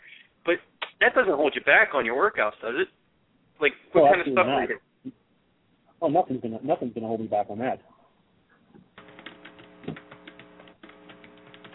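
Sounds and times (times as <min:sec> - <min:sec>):
constant low electrical hum: 0:00.0 - 0:11.7
speech: 0:00.5 - 0:03.0, 0:03.6 - 0:05.2, 0:06.0 - 0:07.9
typing on a computer keyboard: 0:09.0 - 0:11.7.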